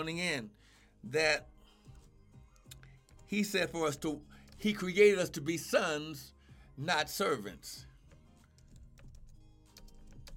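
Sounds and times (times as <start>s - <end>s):
speech: 0.0s - 1.5s, 3.3s - 7.9s
computer keyboard typing: 8.1s - 10.3s.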